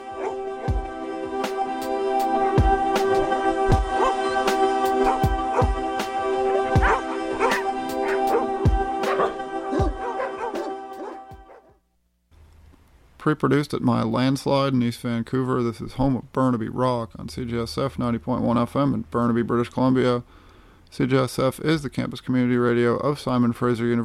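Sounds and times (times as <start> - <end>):
sustained tonal backdrop: 0.0 - 11.7
dog barking: 0.2 - 0.4, 2.2 - 5.8, 6.6 - 11.7
speech: 13.3 - 24.0.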